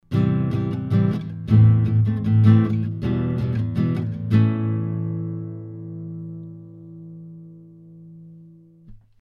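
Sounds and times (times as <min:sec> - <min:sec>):
guitar recorded with a microphone 10 cm high: 0:00.0 - 0:08.9.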